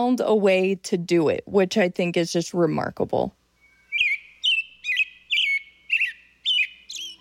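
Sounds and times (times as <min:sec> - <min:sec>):
speech: 0:00.0 - 0:03.4
bird that nests on a constantly moving structure chirping: 0:03.5 - 0:07.1.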